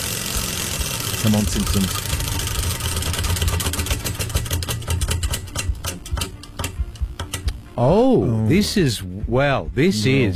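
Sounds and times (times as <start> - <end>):
prize wheel spun to choose a quiz category ticking: 0.0 - 7.6
low droning background: 0.0 - 9.3
speech: 1.2 - 2.2, 7.8 - 10.3.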